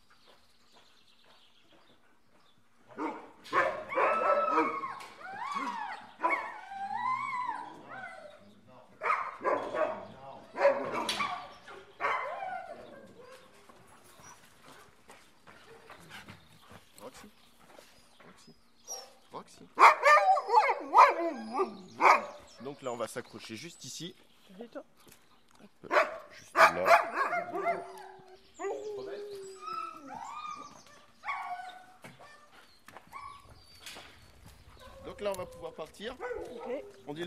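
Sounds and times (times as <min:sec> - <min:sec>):
several dogs barking, yipping and yelping excitedly: 0:02.9 - 0:08.4, 0:09.0 - 0:14.7, 0:19.8 - 0:22.6, 0:25.9 - 0:34.1, 0:34.7 - 0:37.2
speech: 0:23.1 - 0:25.2, 0:35.6 - 0:37.2.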